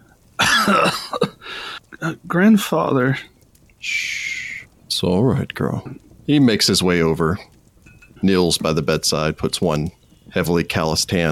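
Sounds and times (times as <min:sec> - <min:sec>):
weak wet cough: 0:00.4 - 0:01.4
speech: 0:00.7 - 0:04.2, 0:05.0 - 0:07.5, 0:08.2 - 0:11.3
short catches of breath: 0:01.4 - 0:02.0.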